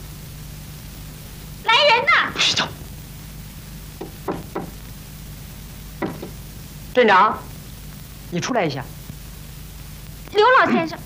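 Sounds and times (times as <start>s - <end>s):
steady low hum: 0.0s - 11.0s
knocking on a door: 4.0s - 4.8s, 6.0s - 6.4s
speech: 7.0s - 7.5s, 8.3s - 9.0s, 10.3s - 11.0s.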